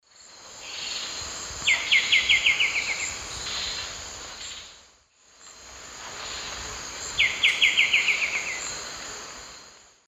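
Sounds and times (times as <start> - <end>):
Pachyramphus polychopterus singing in South American Eastern Lowlands: 0.6 - 4.8, 6.2 - 8.9.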